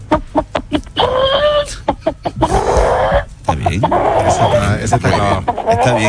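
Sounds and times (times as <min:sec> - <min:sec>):
person imitating a hen's egg-laying cackle: 0:00.6 - 0:06.0
speech: 0:04.8 - 0:06.0.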